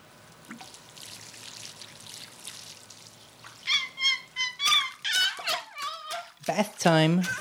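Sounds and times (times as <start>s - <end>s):
water trickling while watering potted plants: 0.2s - 4.4s
short high squeaky vocal-like cries: 3.6s - 6.4s
speech: 6.5s - 7.3s.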